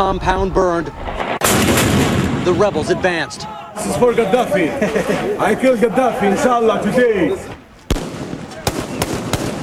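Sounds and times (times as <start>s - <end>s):
speech: 0.0s - 7.5s
gunfire in a street battle fired from inside a compound: 1.1s - 2.7s, 7.9s - 9.6s
laughter: 2.9s - 7.6s.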